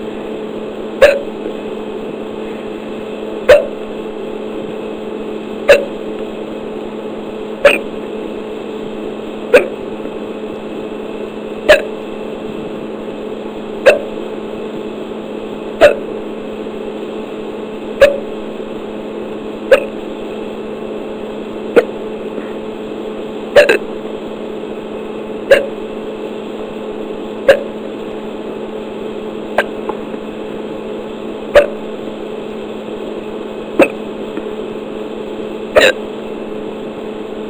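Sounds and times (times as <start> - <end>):
low hum: 0.0 - 37.4
person hiccuping: 1.0 - 1.5, 3.5 - 3.8, 5.7 - 6.0, 7.6 - 8.0, 9.5 - 9.9, 11.7 - 12.0, 13.8 - 14.2, 15.8 - 16.1, 18.0 - 18.3, 19.7 - 20.0, 21.7 - 22.6, 23.5 - 24.0, 25.5 - 25.8, 27.4 - 27.8, 29.6 - 30.0, 31.5 - 31.9, 33.7 - 34.1, 35.7 - 36.1.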